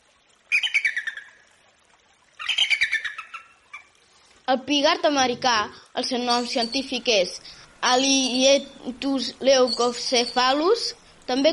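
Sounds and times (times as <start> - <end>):
peregrine falcon harsh rapid cackling calls: 2.4 - 3.9
speech: 4.5 - 11.5.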